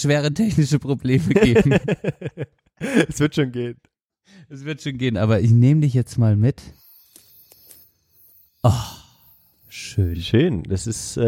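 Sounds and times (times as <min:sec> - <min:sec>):
speech: 0:00.0 - 0:06.8, 0:08.6 - 0:09.0, 0:09.7 - 0:11.2
laughter: 0:01.2 - 0:03.3
crickets chirping: 0:06.7 - 0:10.5.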